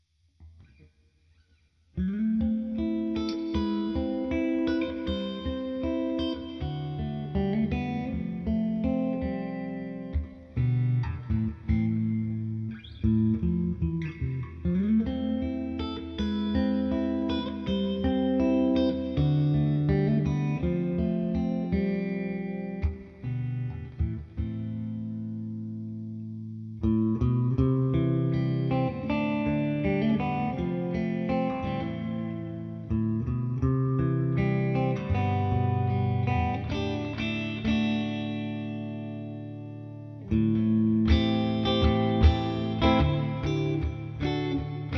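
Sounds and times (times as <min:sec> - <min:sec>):
clean electric guitar with humbucker pickup: 0:01.5 - 0:44.9.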